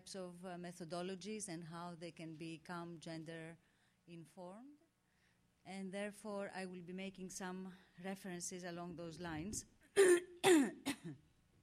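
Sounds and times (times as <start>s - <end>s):
speech: 0.1s - 4.8s, 5.6s - 10.3s
smoker coughing: 10.0s - 11.2s.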